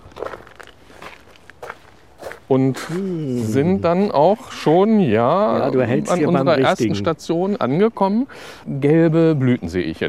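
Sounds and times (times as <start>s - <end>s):
footsteps crunching softly outdoors: 0.0s - 4.8s
speech: 2.5s - 10.0s.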